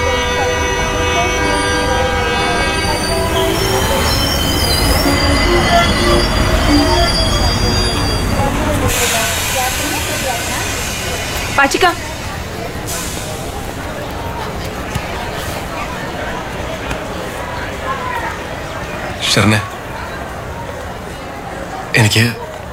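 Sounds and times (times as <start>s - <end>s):
train horn: 0.0s - 8.3s
train wheels squealing at a railway station: 0.0s - 11.8s
train rumbling at a railway station: 0.0s - 22.7s
speech: 11.6s - 12.0s, 19.4s - 19.7s, 22.1s - 22.4s.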